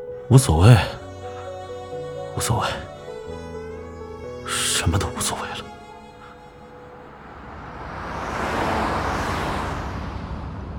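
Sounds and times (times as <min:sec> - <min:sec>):
speech: 0:00.3 - 0:01.0, 0:02.4 - 0:03.4, 0:04.8 - 0:05.7
car engine and tyre noise in evening rush-hour traffic: 0:06.4 - 0:10.7.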